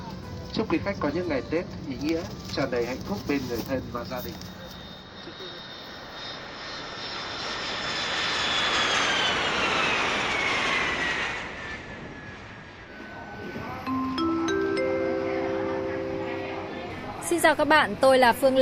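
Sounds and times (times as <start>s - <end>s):
speech: 0.5s - 4.6s, 17.3s - 18.6s
jet engine of an airplane just landed at Chu Lai airport in Vietnam: 4.8s - 17.2s
rising electronic tones: 13.9s - 17.4s.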